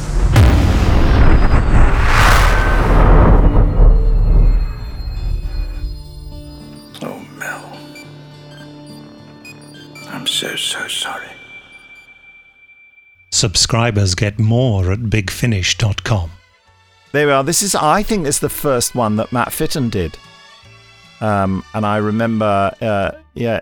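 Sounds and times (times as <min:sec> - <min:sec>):
large bomb exploding in a rumbling blast: 0:00.0 - 0:06.0
quiet tones: 0:04.7 - 0:12.8
speech: 0:13.4 - 0:16.4, 0:17.1 - 0:20.3, 0:21.2 - 0:23.6.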